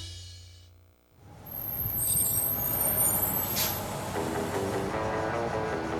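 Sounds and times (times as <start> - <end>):
bus brakes squealing: 1.3 - 5.9
large bus engine rumbling: 1.3 - 5.9.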